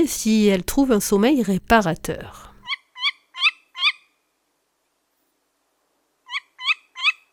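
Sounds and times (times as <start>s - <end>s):
speech: 0.0s - 2.5s
tawny owl hooting: 2.6s - 4.0s, 6.3s - 7.3s.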